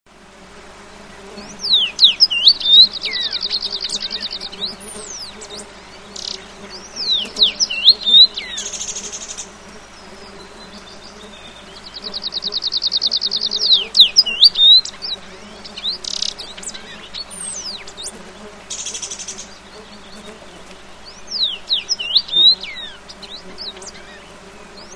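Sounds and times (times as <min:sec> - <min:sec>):
other birds: 0:00.8 - 0:24.9
common rosefinch singing: 0:01.4 - 0:09.3, 0:10.8 - 0:18.2, 0:21.0 - 0:24.9.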